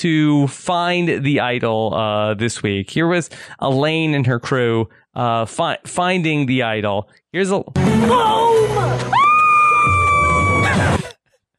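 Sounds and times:
speech: 0.0s - 9.2s
woman screaming in excitement at finding a hidden idol in a game: 8.1s - 11.1s.

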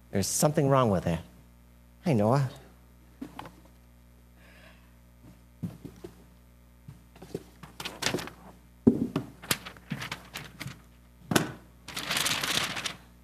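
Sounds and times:
speech: 0.1s - 1.3s, 2.0s - 2.6s
paper sheets rustling and crinkling as they are handled: 7.2s - 8.6s, 9.3s - 10.9s, 11.9s - 13.1s.

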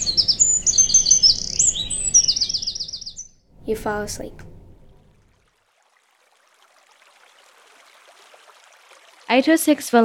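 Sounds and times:
birds chirping in high-pitched trills and tweets: 0.0s - 5.0s
soft steady low hum: 0.0s - 5.4s
speech: 3.7s - 4.5s, 9.3s - 10.0s.

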